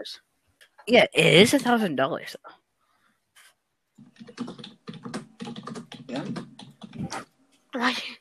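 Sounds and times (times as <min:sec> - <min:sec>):
speech: 0:00.0 - 0:02.6, 0:04.2 - 0:04.7, 0:07.0 - 0:08.1
typing on a computer keyboard: 0:04.0 - 0:07.2.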